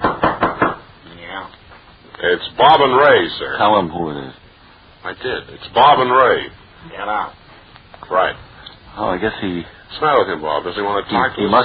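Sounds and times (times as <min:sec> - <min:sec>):
firm knocks on a wooden door: 0:00.0 - 0:00.8
speech: 0:02.2 - 0:04.4, 0:05.0 - 0:07.4, 0:08.0 - 0:11.6.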